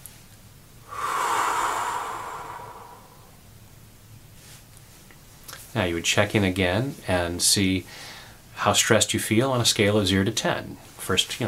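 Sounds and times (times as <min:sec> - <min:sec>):
deep breath during a fingertip-tapping stress-relief exercise: 0:00.8 - 0:03.5, 0:07.9 - 0:08.4
speech: 0:05.8 - 0:11.4.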